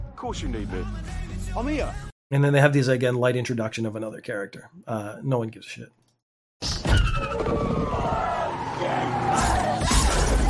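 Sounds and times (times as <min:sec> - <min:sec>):
speech: 0:00.2 - 0:06.0, 0:07.3 - 0:08.1
car tires squealing in a long skid: 0:07.2 - 0:10.4.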